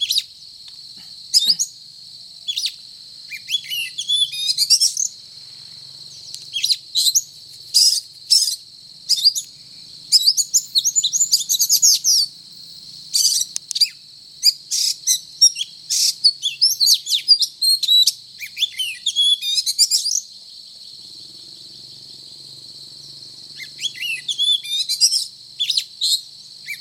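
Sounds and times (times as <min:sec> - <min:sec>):
steady high-pitched hiss: 0:00.0 - 0:25.6
Oriental magpie-robin singing: 0:02.5 - 0:05.2, 0:06.2 - 0:20.3, 0:23.6 - 0:26.8.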